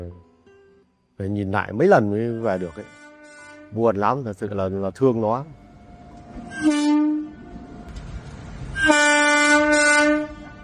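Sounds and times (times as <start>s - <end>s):
low rumble of rail noise: 1.1s - 10.6s
speech: 1.2s - 3.0s, 3.7s - 5.6s
train horn blasts: 1.9s - 4.4s, 5.5s - 7.9s, 8.7s - 10.6s.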